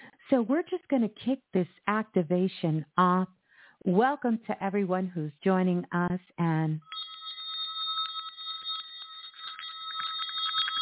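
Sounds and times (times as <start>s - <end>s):
speech: 0.3s - 6.9s
bell ringing: 6.8s - 10.8s.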